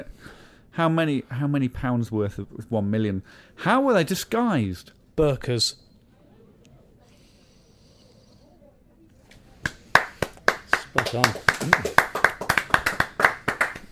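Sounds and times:
speech: 0:00.0 - 0:05.8, 0:10.9 - 0:11.9
applause: 0:09.6 - 0:13.9.

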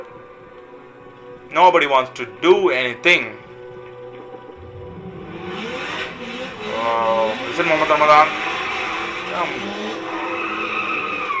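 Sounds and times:
speech: 0:01.5 - 0:03.4, 0:06.8 - 0:08.5, 0:09.4 - 0:09.8
car tires skidding: 0:04.5 - 0:11.3.

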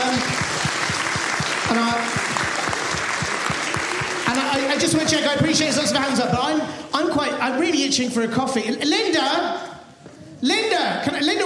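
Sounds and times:
live audience applause: 0:00.0 - 0:06.3
speech: 0:04.8 - 0:09.7, 0:10.4 - 0:11.4.

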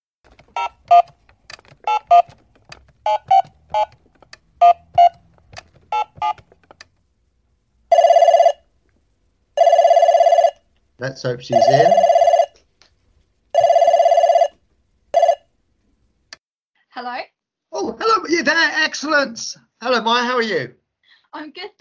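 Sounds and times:
short telephone keypad tones dialing a number: 0:00.3 - 0:06.8, 0:11.5 - 0:12.4
speech: 0:00.6 - 0:01.2, 0:11.2 - 0:12.2, 0:19.2 - 0:20.8
electronic telephone ringing tones on the line: 0:01.9 - 0:02.3, 0:03.0 - 0:04.0, 0:04.6 - 0:05.2, 0:05.9 - 0:06.4, 0:07.9 - 0:08.6, 0:09.6 - 0:10.6, 0:11.5 - 0:12.6, 0:13.6 - 0:14.6, 0:15.2 - 0:15.5.

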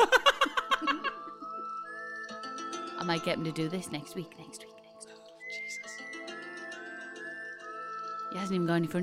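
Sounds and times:
music bed with harmonic tones: 0:00.0 - 0:09.0
speech: 0:03.0 - 0:04.7, 0:08.3 - 0:09.0
person whistling a wavering high tune: 0:05.4 - 0:06.3.

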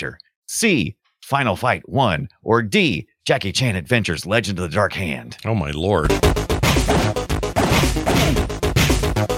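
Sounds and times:
speech: 0:00.0 - 0:06.5
video game punching and smashing effects: 0:06.1 - 0:09.2.

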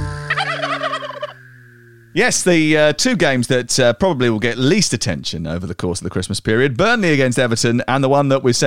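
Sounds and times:
turkey gobbling: 0:00.2 - 0:02.1
speech: 0:02.1 - 0:08.6.

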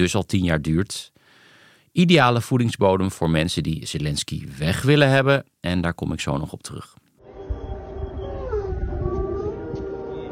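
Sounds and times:
speech: 0:00.0 - 0:01.2, 0:02.0 - 0:07.0
low steady drone of an air raid siren: 0:07.2 - 0:10.3
wolves howling at the zoo in Kharkiv, Ukraine: 0:07.3 - 0:10.3.

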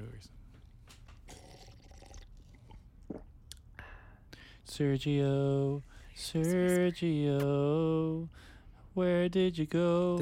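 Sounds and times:
speech: 0:00.0 - 0:00.4, 0:04.7 - 0:10.2
person drinking water into a microphone: 0:01.2 - 0:03.6.

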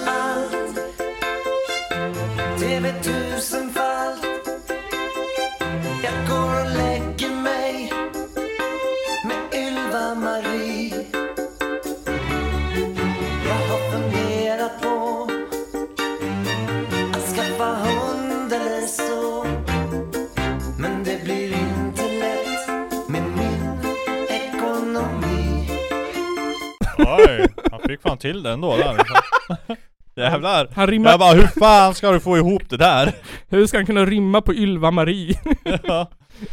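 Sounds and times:
man singing a Swedish-language song: 0:00.0 - 0:00.9, 0:02.4 - 0:04.5, 0:05.9 - 0:08.2, 0:09.2 - 0:11.2, 0:13.2 - 0:15.6, 0:17.0 - 0:19.8, 0:20.7 - 0:25.9
full backing music of a Swedish-language song: 0:00.0 - 0:26.8
speech: 0:02.6 - 0:03.6, 0:28.2 - 0:36.5
laughter: 0:26.8 - 0:29.9, 0:35.3 - 0:36.5.

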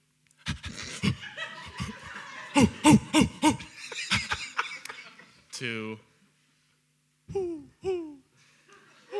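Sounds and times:
laughter: 0:00.5 - 0:05.5, 0:08.7 - 0:09.1
speech: 0:02.6 - 0:03.3
person imitating an owl hooting: 0:02.6 - 0:03.7, 0:07.3 - 0:08.3.

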